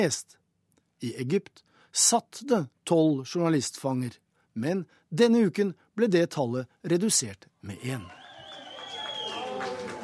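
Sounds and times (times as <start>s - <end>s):
speech: 0.0s - 0.4s, 1.0s - 8.2s
crowd of family and friends cheering at an airport: 7.8s - 10.0s.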